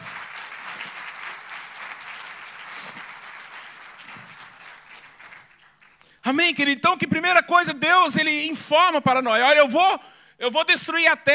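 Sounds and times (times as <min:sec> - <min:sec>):
audience applauding: 0:00.0 - 0:06.1
speech: 0:06.3 - 0:11.3.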